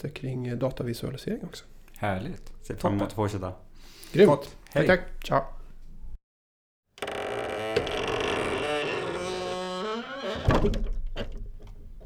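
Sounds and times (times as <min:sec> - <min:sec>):
speech: 0:00.0 - 0:05.6, 0:10.6 - 0:11.0
door creaking open with squealing hinges: 0:07.0 - 0:12.0
door swinging shut with a solid rattling thud: 0:07.8 - 0:12.0.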